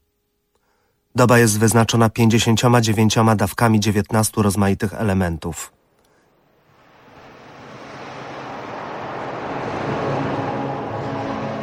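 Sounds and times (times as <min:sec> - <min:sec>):
speech: 0:01.2 - 0:05.8
sea waves washing around a boat rocking on the water: 0:06.6 - 0:11.6.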